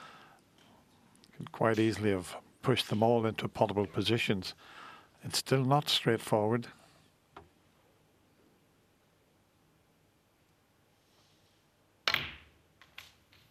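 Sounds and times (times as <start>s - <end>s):
speech: 1.6s - 6.8s
snooker balls clicking together on the table: 12.0s - 13.4s.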